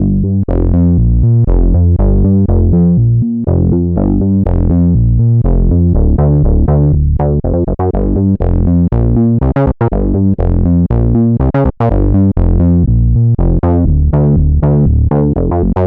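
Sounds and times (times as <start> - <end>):
synth bass loop in G minor: 0.0 - 15.8.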